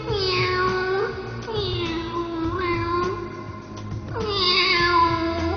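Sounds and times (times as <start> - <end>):
cat meowing: 0.1 - 2.9, 4.2 - 5.4.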